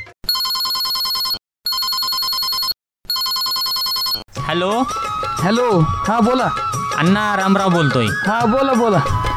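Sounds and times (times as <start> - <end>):
telephone ringing during outgoing call: 0.3 - 4.3
speech: 4.5 - 9.2.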